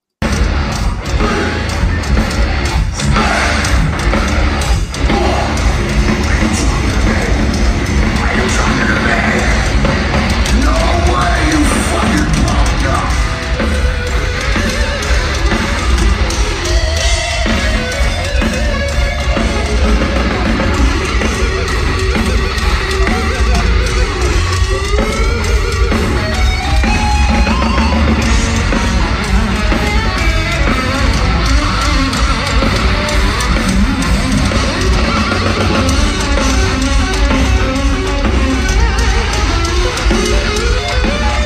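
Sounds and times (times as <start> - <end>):
concert crowd noise: 0.0 - 41.4
full band playing live: 0.2 - 41.4
raw distorted instrumental solo in a live concert: 0.2 - 41.4.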